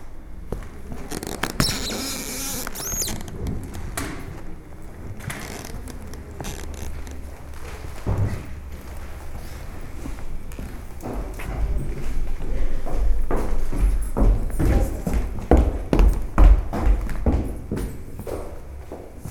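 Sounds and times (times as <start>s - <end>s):
slow footsteps on old wooden floorboards: 0.4s - 19.2s
old wooden floorboards creaking in a museum: 0.9s - 4.4s, 5.0s - 7.6s.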